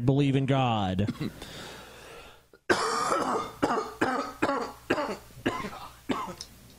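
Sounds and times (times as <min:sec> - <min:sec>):
speech: 0:00.0 - 0:01.7
loud chesty coughing: 0:01.1 - 0:01.4, 0:02.6 - 0:06.4.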